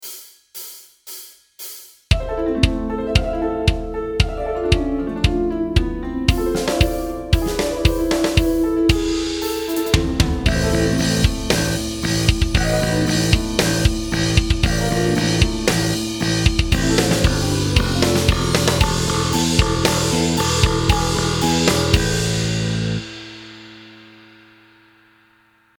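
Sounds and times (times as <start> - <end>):
backing track music: 2.1 - 24.5.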